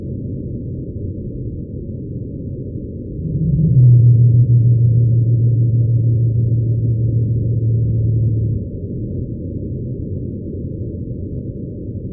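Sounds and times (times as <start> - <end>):
dull rumbling background: 0.0 - 12.1
pygmy blue whale song sped up: 3.2 - 8.7.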